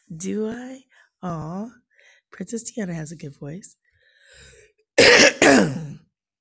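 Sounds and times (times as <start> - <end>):
speech: 0.1 - 6.0
harsh coughs: 5.0 - 6.0.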